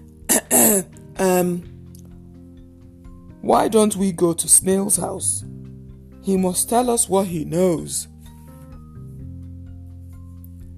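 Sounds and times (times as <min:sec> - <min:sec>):
human voice imitating a fox clearing its throat with gruff voiced bursts: 0:00.3 - 0:01.0
speech: 0:00.5 - 0:01.7, 0:03.4 - 0:05.6, 0:06.2 - 0:08.1.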